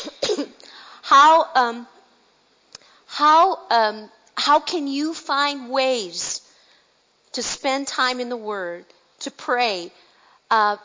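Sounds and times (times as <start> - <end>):
person coughing: 0.0 - 0.7
speech: 1.1 - 2.0, 3.2 - 6.4, 7.4 - 10.8.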